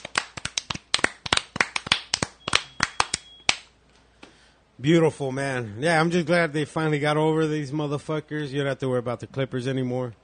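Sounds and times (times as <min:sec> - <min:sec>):
hand clapping: 0:00.0 - 0:03.7
speech: 0:04.8 - 0:10.2.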